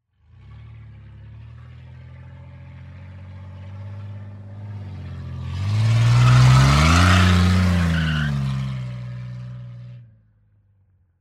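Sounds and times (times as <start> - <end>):
car driving: 0.2 - 10.1
car tires squealing: 5.4 - 9.0.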